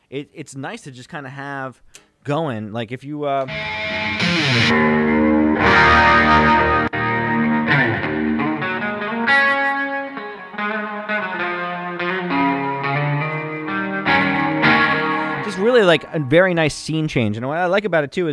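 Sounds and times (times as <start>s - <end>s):
speech: 0.1s - 6.7s, 15.8s - 18.3s
electric guitar through amp modeler pedal with built-in reverb: 3.5s - 16.4s.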